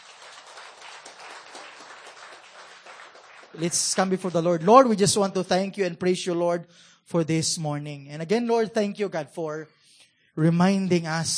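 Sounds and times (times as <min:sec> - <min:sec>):
church congregation clapping: 0:00.0 - 0:05.6
speech: 0:03.6 - 0:09.8, 0:10.4 - 0:11.3.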